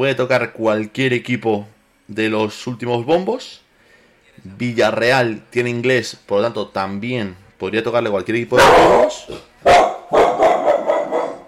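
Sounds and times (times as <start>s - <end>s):
speech: 0.0s - 3.6s, 4.4s - 9.8s
female dog barking: 8.6s - 11.4s.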